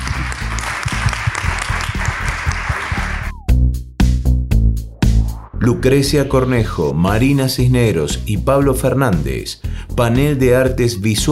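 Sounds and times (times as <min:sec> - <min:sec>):
audience at a visual arts and distribution panel applauding: 0:00.0 - 0:03.3
loud punchy music with heavy beats: 0:00.4 - 0:05.6
speech: 0:05.6 - 0:11.2.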